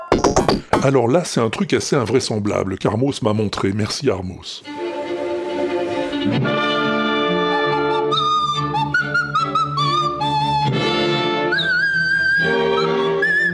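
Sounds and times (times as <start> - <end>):
speech: 0.5 - 4.8
nose flute playing an ornamented operatic melody with trills: 4.7 - 13.5.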